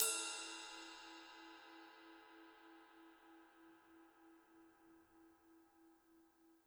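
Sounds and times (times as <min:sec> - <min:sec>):
ride cymbal struck softly with stick: 0:00.0 - 0:01.7.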